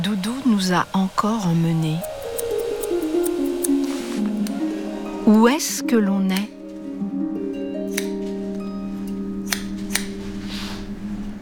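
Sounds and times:
speech: 0.0s - 2.1s, 5.3s - 6.6s
scissors cutting hair at a hairdresser's salon: 2.0s - 4.6s, 7.9s - 8.2s, 9.1s - 10.2s
steady sustained musical tones: 2.0s - 11.3s.

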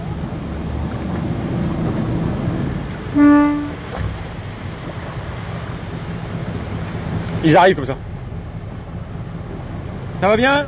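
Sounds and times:
waves and water washing: 0.0s - 10.6s
dive boat horn toot: 3.1s - 4.0s
speech: 7.4s - 8.1s, 10.2s - 10.6s.

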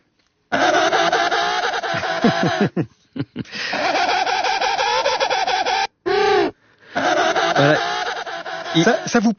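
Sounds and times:
penguin call: 0.5s - 2.7s, 3.7s - 9.3s
speech: 2.2s - 3.8s, 7.6s - 7.9s, 8.7s - 9.3s.

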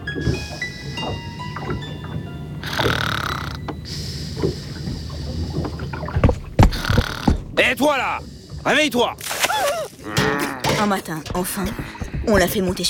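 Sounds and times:
low knocks: 0.0s - 8.6s, 10.1s - 12.8s
swells of water sloshing against the hull: 0.0s - 12.8s
wooden boat at sea creaking and groaning as it rolls: 0.0s - 12.8s
speech: 0.2s - 1.3s, 7.6s - 9.3s, 10.8s - 12.8s.

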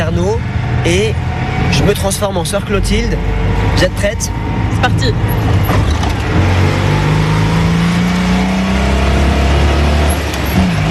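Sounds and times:
speech: 0.0s - 5.8s
small Citroën 2CV car engine revving and accelerating along boulevard Carnot: 3.2s - 10.8s.

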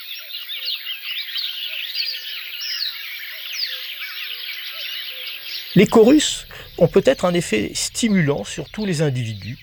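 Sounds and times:
marsh warbler singing: 0.0s - 9.6s
common cuckoo calling: 3.0s - 9.6s
speech: 5.8s - 9.6s.

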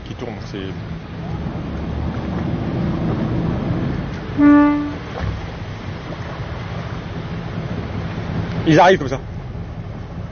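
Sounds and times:
continuous wash of waves: 0.0s - 10.2s
speech: 0.5s - 1.4s, 8.7s - 9.3s
dive boat horn toot calling divers in: 4.3s - 5.2s.

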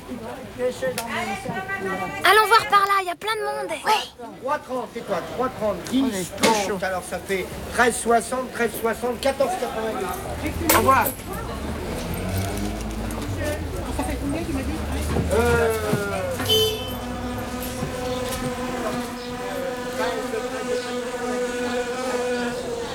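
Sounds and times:
general outdoor bustle: 0.0s - 22.9s
speech: 0.6s - 11.4s, 15.3s - 16.0s
indistinct voices: 8.8s - 22.9s
wasps buzzing: 10.2s - 22.9s.

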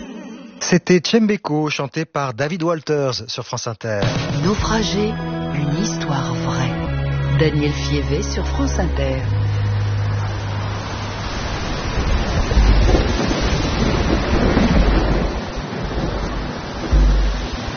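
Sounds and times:
speech: 0.6s - 6.8s, 7.4s - 9.4s
heavy continuous rain in a storm on Sable Island: 9.2s - 17.7s
gusting wind in a storm on Sable Island: 9.8s - 17.7s
deep rumbles of thunder on Sable Island: 11.7s - 17.7s.

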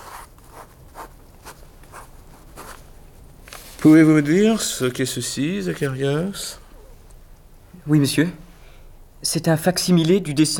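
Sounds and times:
pen scratching across paper drawing diagrams: 0.0s - 2.8s
speech: 3.8s - 6.6s, 7.9s - 8.4s, 9.2s - 10.5s.

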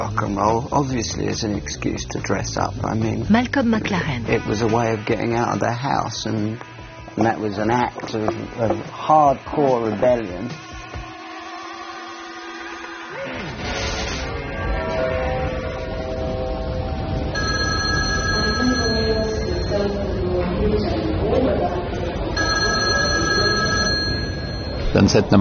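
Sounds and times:
speech: 0.0s - 10.7s, 24.9s - 25.3s
dense continuous bed of music: 0.0s - 25.3s
landline telephone ringing with a steady electronic trill: 17.4s - 20.2s, 22.4s - 25.0s.

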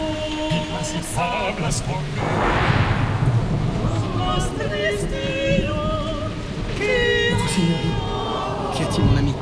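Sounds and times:
storm rain hissing: 0.0s - 9.4s
speech: 0.8s - 3.6s, 4.3s - 5.6s
deep thunder rumbling: 2.0s - 6.8s.

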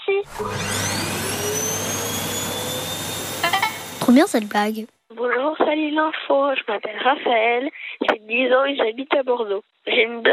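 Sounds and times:
speech: 0.2s - 0.8s, 4.1s - 10.3s
vacuum cleaner running: 0.2s - 4.7s.

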